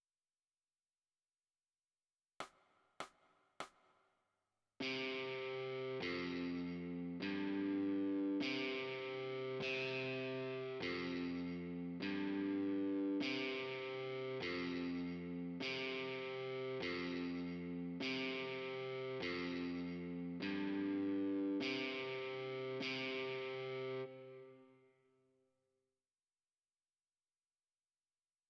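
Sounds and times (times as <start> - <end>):
overdrive guitar: 4.8 - 24.9.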